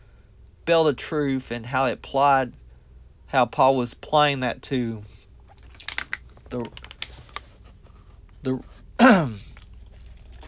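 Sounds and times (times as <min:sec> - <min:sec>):
speech: 0:00.7 - 0:02.6, 0:03.3 - 0:05.1, 0:06.5 - 0:06.8, 0:08.4 - 0:09.4
person clearing throat from a tickle in the throat: 0:09.0 - 0:09.6.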